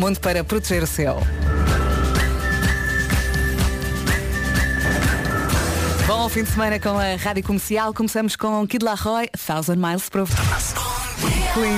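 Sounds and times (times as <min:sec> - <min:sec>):
speech: 0:00.0 - 0:01.8, 0:06.3 - 0:10.8, 0:11.6 - 0:11.7
backing music with regular percussive hits: 0:00.0 - 0:08.1
whistled melody of an insurance advertising jingle on the radio: 0:01.4 - 0:07.2.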